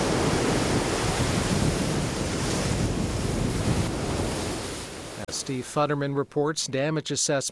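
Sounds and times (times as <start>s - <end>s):
gusting wind buffeting the microphone: 0.0s - 5.2s
heavy surf crashing against the shore: 0.0s - 5.3s
speech: 5.3s - 7.4s.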